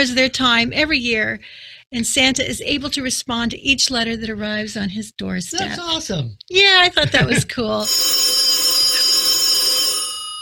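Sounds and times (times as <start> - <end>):
speech: 0.0 - 8.4
telephone ringing in another room: 7.8 - 10.4.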